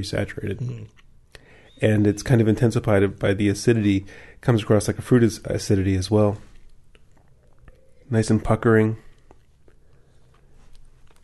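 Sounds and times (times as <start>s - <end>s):
speech: 0.0s - 1.0s, 1.8s - 6.5s, 8.1s - 9.1s
soft wet mouth clicks and smacks: 0.6s - 1.5s, 6.6s - 8.1s, 9.1s - 10.4s.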